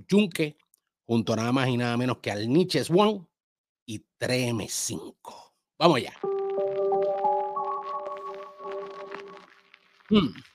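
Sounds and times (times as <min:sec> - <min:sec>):
speech: 0:00.0 - 0:03.3, 0:03.9 - 0:06.4, 0:10.1 - 0:10.5
vinyl record static crackle and pops: 0:05.8 - 0:10.5
sustained musical chord from a rap track: 0:06.2 - 0:09.4.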